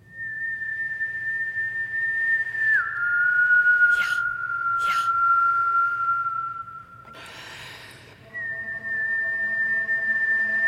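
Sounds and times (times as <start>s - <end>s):
person whistling long steady tones: 0.0s - 10.6s
sharp breathy bursts: 3.9s - 5.2s, 7.0s - 8.3s.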